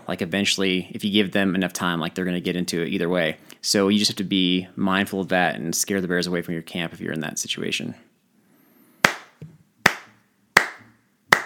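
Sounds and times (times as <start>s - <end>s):
speech: 0.1s - 8.1s
single person clapping hands: 9.0s - 11.4s.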